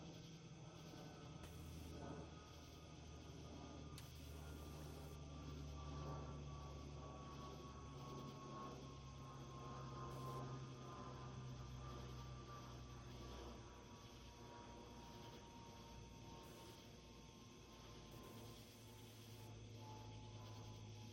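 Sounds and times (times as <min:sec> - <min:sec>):
airplane passing overhead with roar and whining tone: 0:00.0 - 0:21.1.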